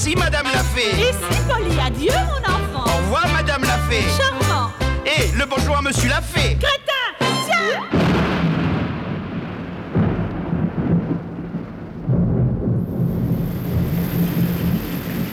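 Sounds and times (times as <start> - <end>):
deep rumbling swells: 0.0 - 6.7, 8.0 - 15.3
speech: 0.0 - 6.8
steady heavy rain: 7.9 - 15.3.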